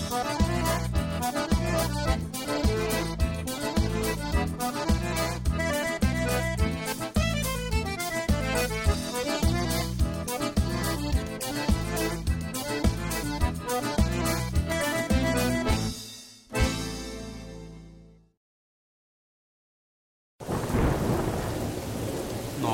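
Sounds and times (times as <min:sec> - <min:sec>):
music: 0:00.0 - 0:18.4
deep low rumble of thunder: 0:20.4 - 0:22.7
heavy steady rain in a thunderstorm: 0:20.4 - 0:22.7.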